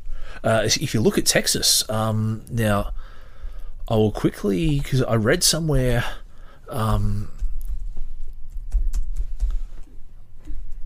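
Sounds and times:
speech: 0.4 - 3.0, 3.9 - 7.4
large fingers thumping on a computer keyboard: 8.5 - 9.7.

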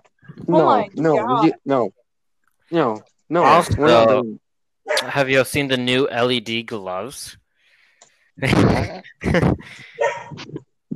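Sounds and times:
speech: 0.4 - 2.0, 2.7 - 7.4, 8.4 - 10.6
dogs barking: 4.9 - 5.1, 9.9 - 10.4.

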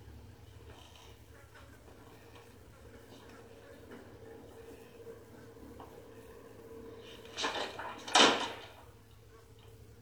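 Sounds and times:
doors closing inside a house: 7.2 - 8.8.

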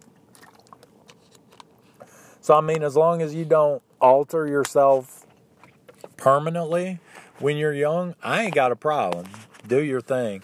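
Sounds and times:
person sipping and swallowing water: 0.3 - 1.3
speech: 2.4 - 5.2, 6.2 - 10.4.

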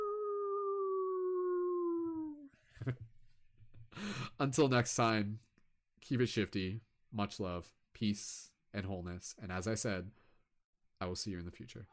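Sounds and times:
person imitating a wolf with a long howl: 0.0 - 2.5
speech: 2.8 - 3.1, 3.9 - 10.2, 11.0 - 11.9.

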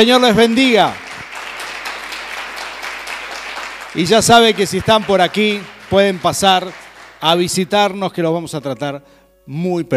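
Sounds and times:
speech: 0.0 - 1.0, 3.9 - 9.9
audience applause: 0.5 - 7.5.

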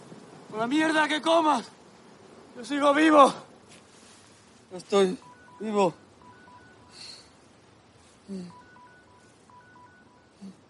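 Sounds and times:
hiss: 0.0 - 10.6
speech: 0.5 - 1.8, 2.6 - 3.5, 4.7 - 6.0, 8.3 - 8.6
mobile phone ringing: 5.2 - 7.3, 8.4 - 10.6.

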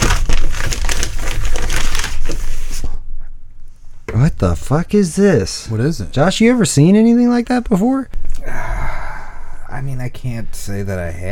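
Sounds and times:
cardboard box being torn and opened: 0.0 - 2.8
speech: 4.4 - 8.6, 9.8 - 11.3.

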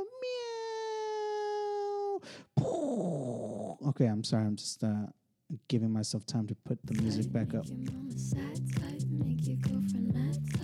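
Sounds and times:
person's voice imitating a cat with a long drawn-out meow: 0.0 - 3.8
speech: 3.8 - 8.6, 9.2 - 10.6.

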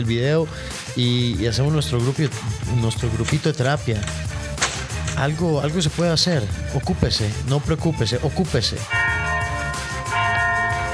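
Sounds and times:
speech: 0.0 - 4.4, 5.2 - 9.0
church bells ringing: 8.9 - 10.9.

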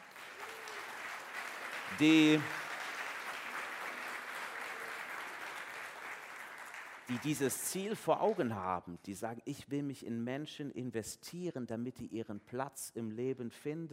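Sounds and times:
large audience applauding: 0.0 - 8.4
speech: 1.9 - 2.6, 7.1 - 13.9.

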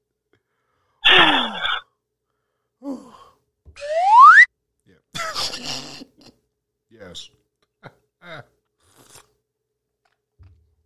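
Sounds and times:
person slurping tea: 1.0 - 1.8, 8.9 - 9.3
person gulping tea: 1.1 - 1.8.

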